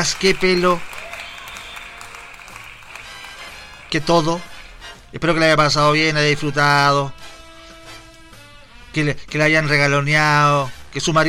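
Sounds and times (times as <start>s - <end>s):
speech: 0.0s - 0.9s, 3.9s - 4.5s, 5.1s - 7.2s, 9.0s - 11.2s
group applauding for a woman's birthday: 0.0s - 5.0s.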